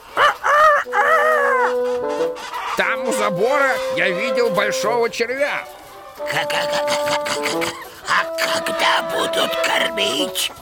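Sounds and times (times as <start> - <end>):
rooster-like crow in a farmyard: 0.0 - 1.8
farmyard poultry drawn-out harmonic squawks: 0.0 - 10.6
speech: 2.8 - 10.6
laughter: 6.2 - 9.7.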